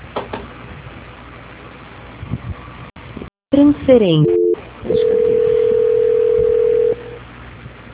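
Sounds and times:
falling telephone line tones during a call transfer: 4.2 - 7.2.

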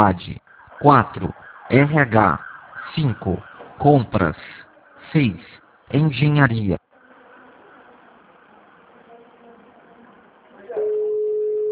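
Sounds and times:
speech: 0.0 - 4.5, 5.1 - 6.8
telephone ringback tone calling an office switchboard: 10.8 - 11.7.

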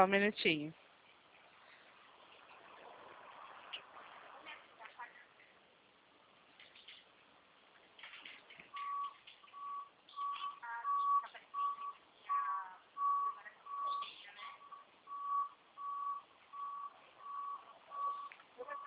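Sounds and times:
speech: 0.0 - 0.8
rumbling street noise: 0.0 - 18.8
truck reversing alarm beeping: 8.7 - 18.8.

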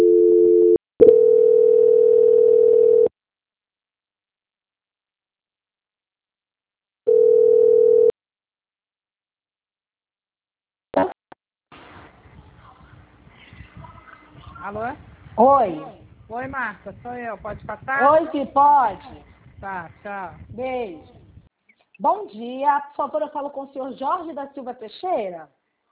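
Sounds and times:
telephone line tones during a call transfer: 0.0 - 3.1, 7.1 - 8.1
speech: 14.7 - 21.2, 22.0 - 25.6.

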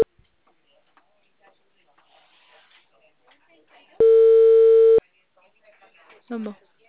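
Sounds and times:
telephone ringing tone while calling someone: 4.0 - 5.0
speech: 6.3 - 6.7.

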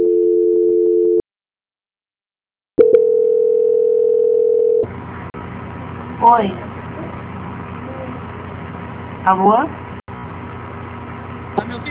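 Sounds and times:
telephone line tone during a call transfer: 0.0 - 1.2, 2.8 - 4.9
speech: 6.2 - 6.7, 9.3 - 9.8.

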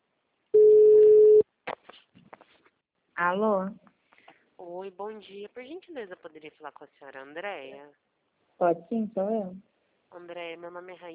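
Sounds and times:
ringback tone on an outgoing telephone call: 0.6 - 1.4
speech: 3.2 - 3.8, 4.6 - 11.1.

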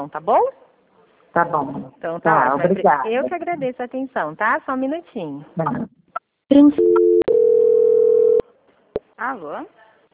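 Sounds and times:
speech: 0.0 - 0.6, 1.3 - 5.9, 6.5 - 7.0, 9.2 - 9.8
telephone tones while a call is transferred to quality control: 6.7 - 8.4.

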